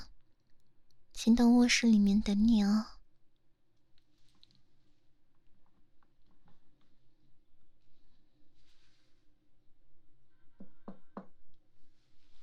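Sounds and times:
speech: 1.2 - 3.0
faint rustling in a room: 3.8 - 9.6, 11.8 - 12.4
sharp knocks on a door: 10.6 - 11.4.

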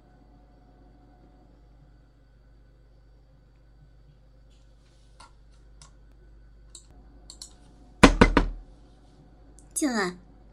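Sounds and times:
loud forceful knocking on an office door: 8.0 - 8.7
speech: 9.8 - 10.2.

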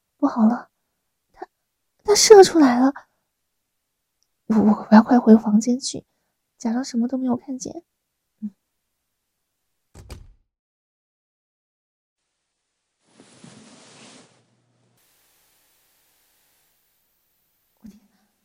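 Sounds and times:
low steady hiss: 0.0 - 9.9, 14.4 - 18.4
speech: 0.2 - 0.7, 2.1 - 3.1, 4.5 - 8.6
door opening: 10.0 - 10.5
soft thud: 10.0 - 10.5
sliding and rustling noise: 13.0 - 15.8.

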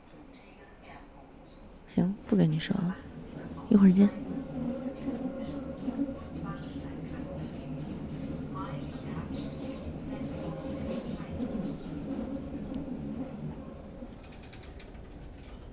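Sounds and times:
moving subway train rumble heard from inside: 0.8 - 15.7
speech: 1.9 - 3.1, 3.7 - 4.3
indistinct murmuring voices: 3.0 - 14.1.

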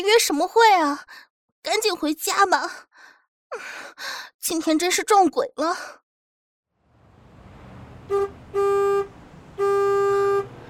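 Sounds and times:
speech: 0.0 - 6.0, 8.1 - 9.9
low rumble of an approaching bus engine: 6.8 - 10.6
street noise: 6.8 - 10.6
bus horn honking: 7.7 - 10.6.

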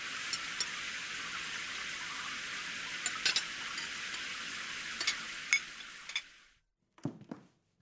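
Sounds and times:
water running from a tap into a sink: 0.0 - 6.6
crockery clattering in a sink: 3.0 - 4.0, 5.0 - 6.4
dishes clinking during washing up: 3.0 - 4.0, 5.0 - 6.4.

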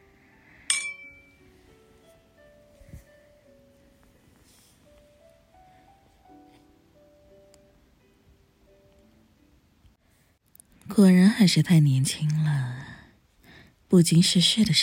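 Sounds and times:
glasses of alcohol clinking in a toast: 0.7 - 1.4
speech: 11.0 - 12.8, 13.9 - 14.8.

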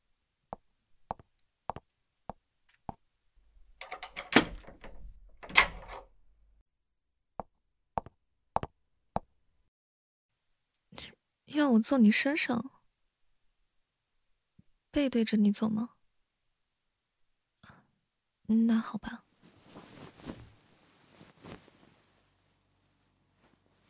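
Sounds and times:
door lock rattling and scraping in an office: 3.7 - 6.4
door lock clicking in an office: 3.8 - 6.2
speech: 11.6 - 12.7, 15.0 - 16.0, 18.5 - 19.2.

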